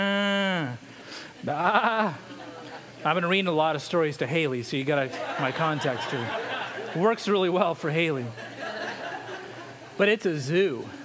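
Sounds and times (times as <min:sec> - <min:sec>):
person imitating a cow mooing: 0:00.0 - 0:00.8
speech: 0:01.4 - 0:02.3, 0:03.0 - 0:08.5, 0:10.0 - 0:11.0
laughter: 0:01.4 - 0:03.3, 0:05.0 - 0:10.0.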